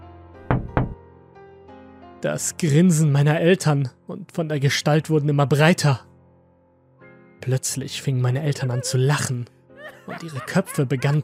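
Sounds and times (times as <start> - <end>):
hard heavy knocks on a window pane: 0.5 - 1.0
speech: 2.2 - 6.1, 7.4 - 11.2
laughter: 9.8 - 11.2.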